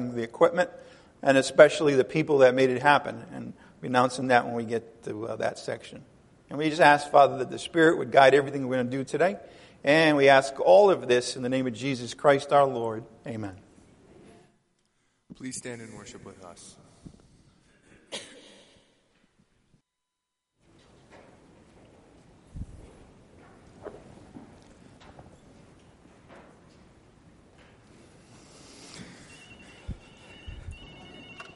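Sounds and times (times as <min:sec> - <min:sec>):
speech: 0:00.0 - 0:13.6, 0:15.3 - 0:17.2
room noise during a church service: 0:00.0 - 0:31.5
telephone ringing with shrill electronic tones during a church service: 0:29.2 - 0:31.5.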